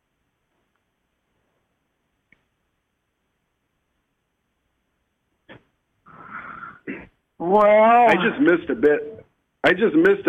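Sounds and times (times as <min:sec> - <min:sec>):
person sneezing: 0:06.1 - 0:07.2
speech: 0:07.4 - 0:10.2.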